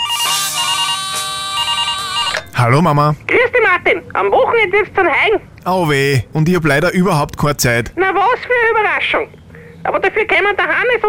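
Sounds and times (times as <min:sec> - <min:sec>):
electronic warbling telephone ringtone: 0:00.0 - 0:03.1
speech: 0:02.6 - 0:11.0.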